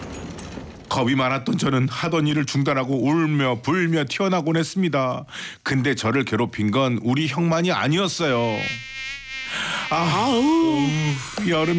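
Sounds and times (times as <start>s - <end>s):
speech: 1.0s - 8.9s, 9.9s - 11.7s
mosquitoes whining around a pit toilet in summer: 8.2s - 11.7s.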